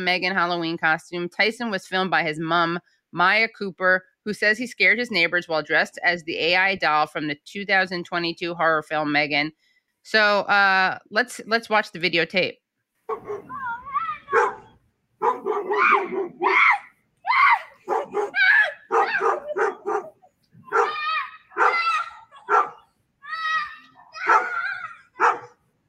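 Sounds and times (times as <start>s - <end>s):
speech: 0.0s - 13.7s, 14.3s - 14.6s, 15.2s - 16.8s
dog barking and yelping excitedly: 13.1s - 25.6s.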